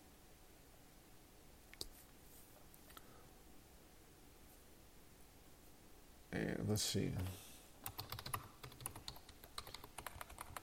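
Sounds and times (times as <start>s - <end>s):
faint low hum: 0.0s - 10.6s
speech: 6.3s - 7.5s
typing on a computer keyboard: 7.8s - 10.6s.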